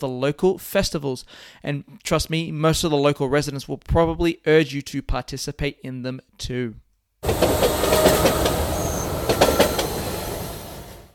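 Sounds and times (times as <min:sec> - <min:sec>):
speech: 0:00.0 - 0:08.4
train wheels clacking over track joints: 0:07.2 - 0:11.0
train rumbling along the rails: 0:07.2 - 0:11.1
faint metallic squeal: 0:07.3 - 0:10.9.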